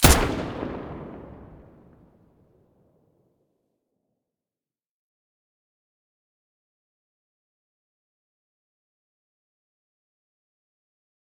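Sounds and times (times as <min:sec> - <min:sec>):
HK416 rifle muzzle blast: 0:00.0 - 0:02.0.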